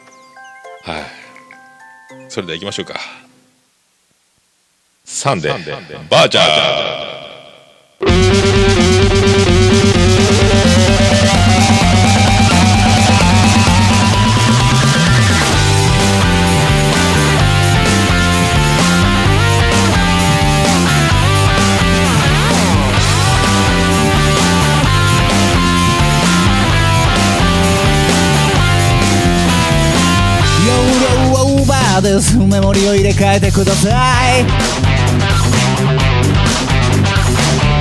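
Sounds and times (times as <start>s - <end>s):
speech: 0.8s - 1.2s, 2.1s - 3.2s, 5.2s - 7.2s, 32.2s - 35.3s
loud dense band music: 8.0s - 37.7s.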